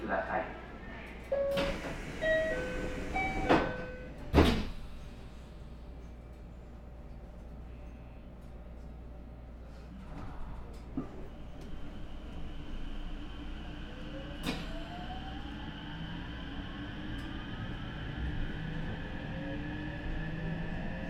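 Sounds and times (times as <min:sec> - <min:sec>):
train pulling away: 0:00.0 - 0:06.2, 0:10.0 - 0:21.0
speech: 0:00.1 - 0:00.6
train doors shutting: 0:01.1 - 0:05.8, 0:09.8 - 0:17.6.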